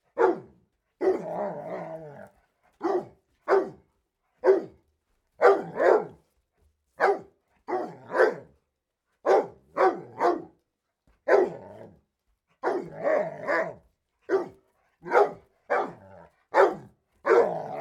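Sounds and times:
dog barking: 0.1s - 1.4s, 2.8s - 3.8s, 4.4s - 4.8s, 5.4s - 6.2s, 7.0s - 8.5s, 9.2s - 10.6s, 11.2s - 11.7s, 12.6s - 17.7s.

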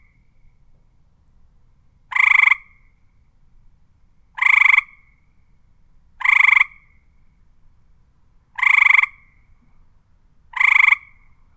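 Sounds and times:
frog croaking: 2.1s - 2.7s, 4.4s - 5.0s, 6.2s - 6.8s, 8.6s - 9.3s, 10.5s - 11.2s.

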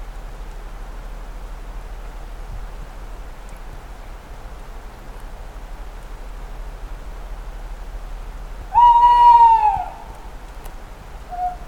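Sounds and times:
owl giving a whistled hoot: 8.7s - 10.1s, 11.3s - 11.6s.

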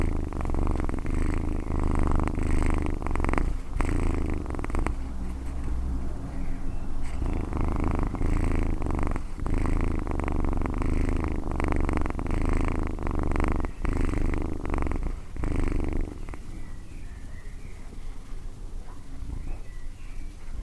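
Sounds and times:
cat purring: 0.0s - 20.6s.

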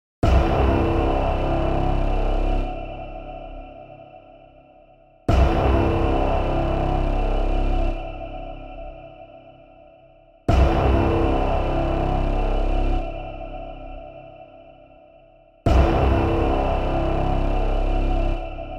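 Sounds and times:
brass hit in C: 0.2s - 3.1s, 5.3s - 8.1s, 10.5s - 13.2s, 15.7s - 18.7s.

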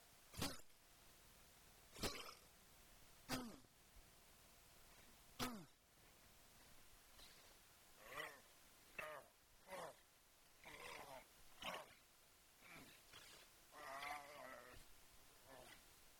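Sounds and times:
grunts: 0.3s - 0.7s, 2.0s - 2.5s, 3.3s - 3.7s, 5.4s - 5.8s, 8.0s - 10.0s, 10.6s - 12.0s, 12.6s - 15.8s.

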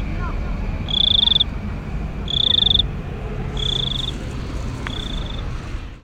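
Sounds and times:
low background rumble: 0.0s - 6.0s
cricket chirping: 0.9s - 1.5s, 2.3s - 2.9s, 3.6s - 4.2s, 4.8s - 5.5s.

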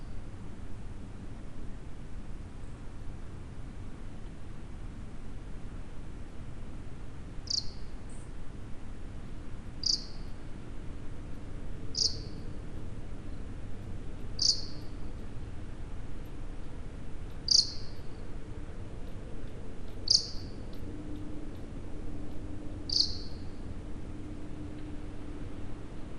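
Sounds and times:
low steady background rumble: 0.0s - 26.1s
bat short sharp high-pitched chirps: 7.5s - 7.8s, 9.8s - 10.2s, 12.0s - 12.3s, 14.4s - 14.8s, 17.5s - 18.0s, 20.1s - 20.6s, 22.9s - 23.4s.

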